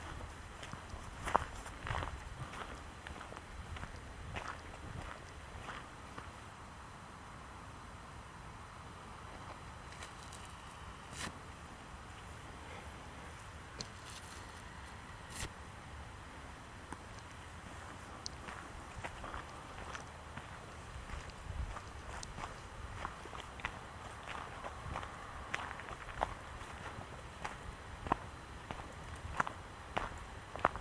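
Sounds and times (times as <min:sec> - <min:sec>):
footsteps on leaves and twigs in a forest: 0:00.0 - 0:06.3, 0:13.8 - 0:15.5, 0:17.7 - 0:30.7
steady low rumble of wind or traffic in a forest: 0:00.0 - 0:30.7.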